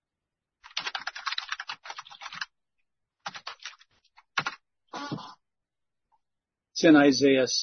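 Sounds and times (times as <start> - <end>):
typing on a computer keyboard: 0.6 - 2.5, 3.2 - 4.6
speech: 6.8 - 7.6.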